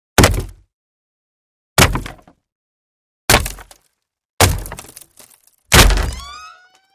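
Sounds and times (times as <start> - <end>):
battering ram hitting wood: 1.8 - 2.4, 3.3 - 3.8, 4.4 - 5.0, 5.7 - 6.2.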